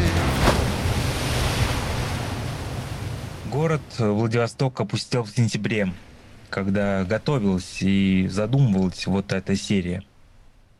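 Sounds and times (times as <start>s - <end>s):
ocean waves breaking on shore: 0.0s - 4.2s, 5.7s - 10.7s
speech: 3.5s - 10.1s.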